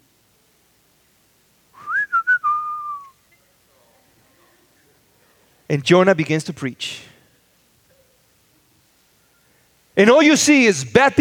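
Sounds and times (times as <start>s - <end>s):
human whistling a single short phrase: 1.8s - 3.2s
speech: 5.7s - 7.1s, 10.0s - 11.1s.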